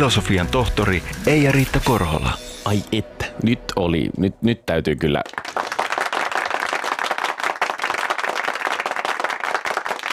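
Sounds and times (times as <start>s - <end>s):
speech: 0.0s - 5.4s
applause from a small group: 5.2s - 10.1s.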